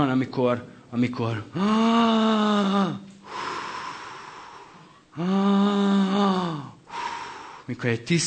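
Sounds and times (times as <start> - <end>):
speech: 0.0 - 3.4, 5.2 - 6.7, 7.7 - 8.2
deep slightly asthmatic-sounding breath: 3.2 - 7.7.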